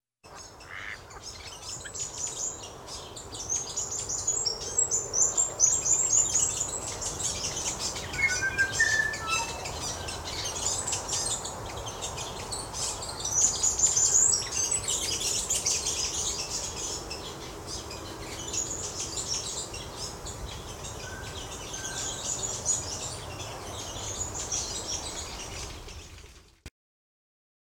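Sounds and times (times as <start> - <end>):
birds: 0.3 - 26.6.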